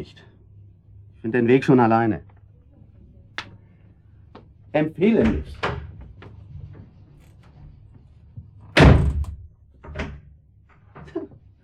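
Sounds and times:
speech: 0.0s - 0.3s, 1.2s - 2.3s, 4.7s - 5.7s
door slipping from a hand and slamming shut: 8.8s - 9.4s.

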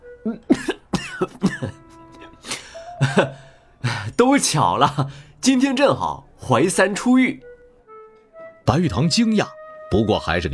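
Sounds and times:
speech: 0.2s - 1.8s, 3.0s - 7.5s, 8.7s - 10.5s
man clearing his throat: 0.5s - 3.4s
man coughing after choking on tea: 0.5s - 4.2s, 4.8s - 5.2s.

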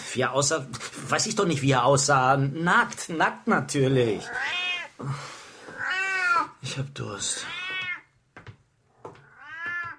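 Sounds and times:
speech: 0.1s - 5.4s, 6.7s - 7.6s
cat meowing: 4.2s - 5.0s, 5.8s - 6.6s, 7.4s - 8.1s, 9.2s - 9.9s.

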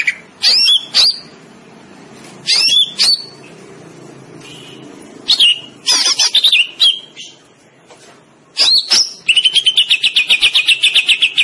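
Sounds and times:
greater green leafbird singing whistled notes and trills: 0.0s - 1.4s, 2.4s - 3.5s, 4.5s - 7.4s, 8.6s - 11.4s.

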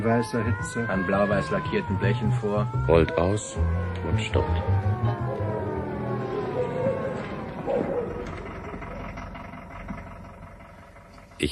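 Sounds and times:
speech: 0.0s - 5.5s
police car siren wailing: 0.0s - 10.7s
police car engine rumbling: 0.0s - 11.5s.

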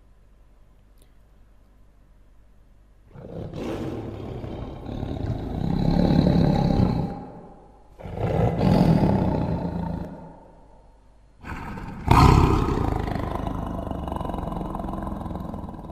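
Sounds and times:
tiger roaring: 3.1s - 10.5s, 11.4s - 15.9s.

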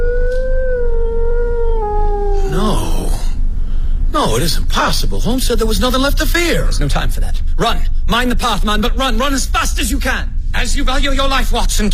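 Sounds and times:
dog howling on the moor: 0.0s - 3.2s
low steady rumble: 0.0s - 11.9s
speech: 4.3s - 11.9s.

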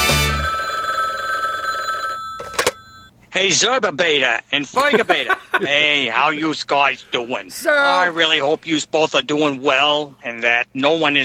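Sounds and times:
telephone bell ringing: 0.0s - 3.1s
speech: 3.4s - 11.2s
laughter: 4.8s - 6.1s.

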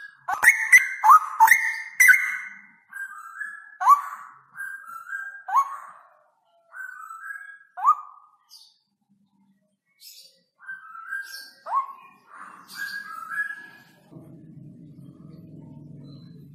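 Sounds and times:
straw-headed bulbul singing clear fluty whistles: 0.0s - 6.1s, 6.7s - 8.4s, 10.6s - 14.0s.

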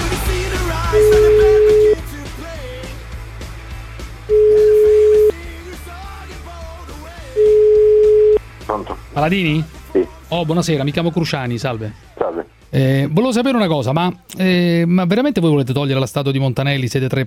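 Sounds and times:
voices: 0.1s - 2.1s
telephone ringing tones during an outgoing call: 0.9s - 2.0s, 4.3s - 5.3s, 7.4s - 8.4s
speech: 9.2s - 9.7s, 10.3s - 12.1s, 12.7s - 17.2s.

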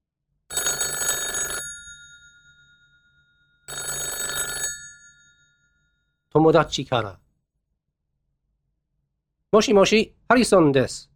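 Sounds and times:
electronic telephone ringing: 0.5s - 5.9s
speech: 6.3s - 7.2s, 9.5s - 11.1s.

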